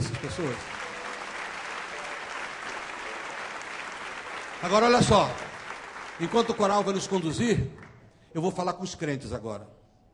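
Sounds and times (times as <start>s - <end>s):
large church audience applauding: 0.0s - 8.0s
speech: 0.2s - 0.8s, 4.6s - 5.5s, 6.2s - 9.8s.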